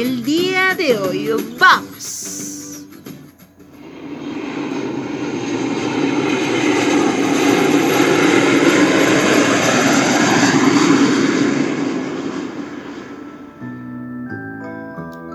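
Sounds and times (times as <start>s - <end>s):
speech: 0.0s - 2.6s
airplane engine roar: 3.6s - 14.2s.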